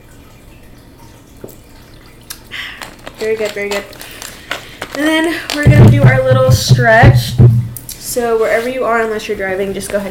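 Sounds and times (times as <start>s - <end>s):
people taking sips of water: 1.5s - 5.6s
speech: 3.2s - 4.2s, 5.0s - 7.5s, 8.2s - 10.0s.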